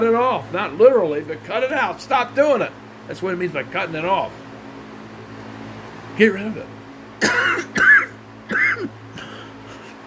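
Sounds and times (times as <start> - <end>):
speech: 0.0 - 4.4, 6.2 - 7.9
low steady hum: 0.0 - 10.0
man clearing his throat: 7.2 - 10.0
man coughing: 7.2 - 10.0.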